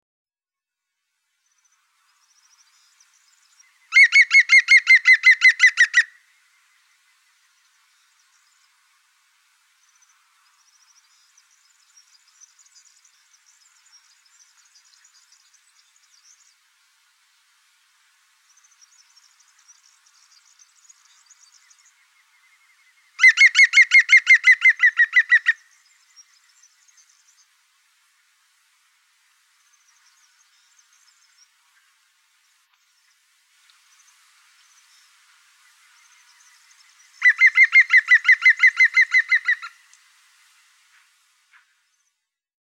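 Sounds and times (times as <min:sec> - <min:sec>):
European green woodpecker singing in Wiesloch: 0:03.9 - 0:06.2, 0:23.2 - 0:25.6, 0:37.2 - 0:39.8.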